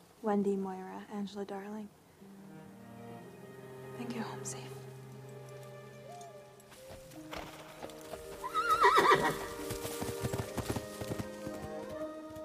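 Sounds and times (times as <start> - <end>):
speech: 0.2 - 2.0, 4.0 - 4.8, 9.1 - 9.5
horse hooves clip-clopping down a path: 4.8 - 12.4
horse whinnying: 8.4 - 9.6.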